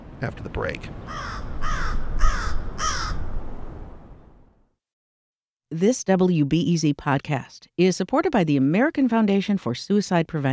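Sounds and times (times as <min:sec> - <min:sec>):
speech: 0:00.2 - 0:01.8, 0:05.7 - 0:10.5
crows cawing in Chicago: 0:01.1 - 0:03.4.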